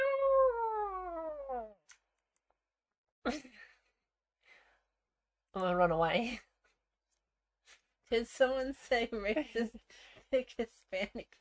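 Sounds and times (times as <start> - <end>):
person imitating a cat meow: 0.0 - 1.7
speech: 3.3 - 3.5, 5.5 - 6.5, 8.1 - 11.3.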